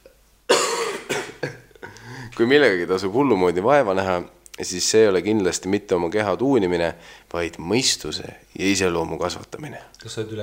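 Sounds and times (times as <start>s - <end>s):
person coughing: 0.5s - 2.0s
speech: 2.4s - 10.4s.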